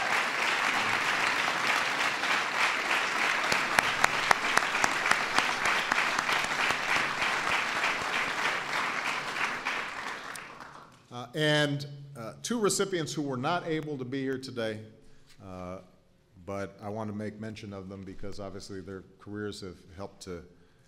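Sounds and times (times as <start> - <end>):
sustained applause from a large audience: 0.0 - 11.0
speech: 11.4 - 15.9, 16.5 - 20.6.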